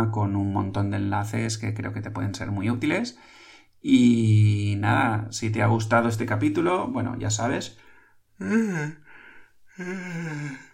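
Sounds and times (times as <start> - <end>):
speech: 0.0 - 7.8, 8.4 - 9.0, 9.8 - 10.7
person yawning: 8.4 - 10.7.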